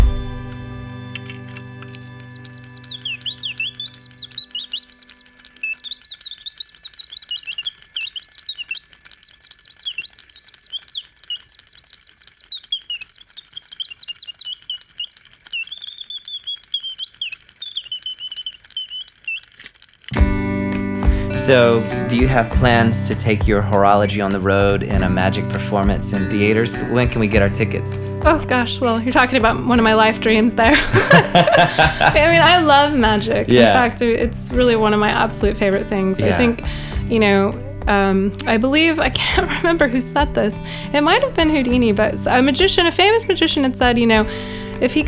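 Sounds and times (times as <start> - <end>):
faint ticking clockwork: 0.0 - 20.4, 21.0 - 45.0
mechanical singing bird automaton warbling chirping song: 1.9 - 20.2
speech: 21.4 - 45.0
laughter: 30.6 - 34.0, 36.2 - 36.7.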